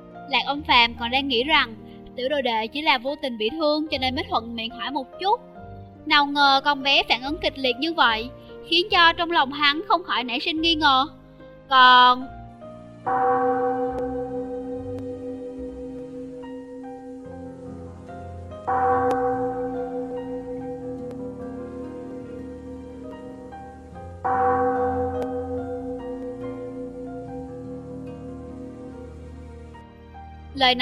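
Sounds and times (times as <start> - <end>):
speech: 0.3 - 12.4, 30.6 - 30.8
great bell ringing outside a hall's doors: 13.1 - 17.9, 18.7 - 29.1.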